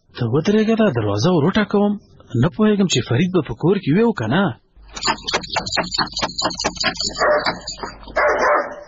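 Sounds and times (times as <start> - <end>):
speech: 0.2 - 8.8
dog barking at a house gate: 6.9 - 8.8.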